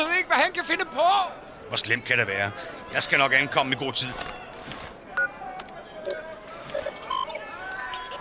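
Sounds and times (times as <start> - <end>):
speech: 0.0 - 4.5
short electronic keypad beeps on a time bubble generator: 7.0 - 8.2.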